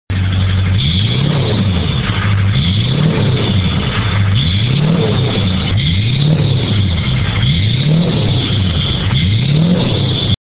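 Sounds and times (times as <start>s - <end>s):
2500 HD 6.6L engine with downpipe: 0.1s - 10.4s.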